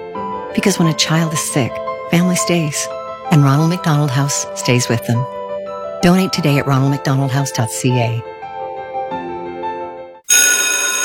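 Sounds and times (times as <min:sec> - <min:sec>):
speech: 0:00.5 - 0:05.4, 0:06.0 - 0:08.3
loud metallic school bell ringing: 0:10.3 - 0:11.0
soft steady melodic chime: 0:10.3 - 0:11.0.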